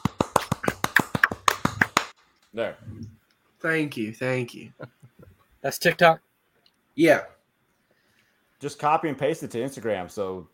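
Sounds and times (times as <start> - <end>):
hand claps: 0.0 - 2.2
speech: 2.6 - 6.3, 7.0 - 7.4, 8.6 - 10.5.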